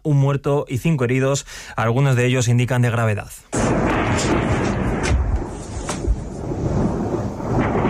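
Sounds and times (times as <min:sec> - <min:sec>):
speech: 0:00.0 - 0:04.7
gunshots during a night-time shooting at a rave festival in northern Switzerland: 0:03.5 - 0:07.8.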